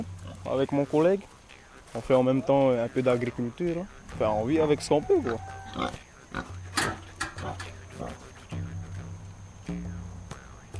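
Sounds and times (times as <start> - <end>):
several pigs grunting and snorting: 0.0 - 0.8, 3.0 - 9.2
speech: 0.0 - 6.5
steady low hum: 0.0 - 10.7
pigs squealing: 1.7 - 8.6.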